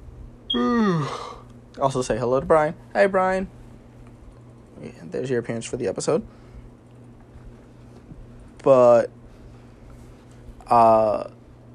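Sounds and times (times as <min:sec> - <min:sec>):
person yawning: 0:00.5 - 0:01.5
speech: 0:00.5 - 0:03.6, 0:04.8 - 0:06.4, 0:08.6 - 0:09.2, 0:10.7 - 0:11.4.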